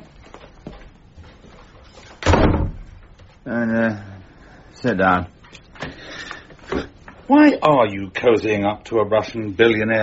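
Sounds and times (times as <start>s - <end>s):
door pushed shut with a firm thud: 2.2s - 3.0s
speech: 3.4s - 4.1s, 4.8s - 5.4s, 7.3s - 10.0s.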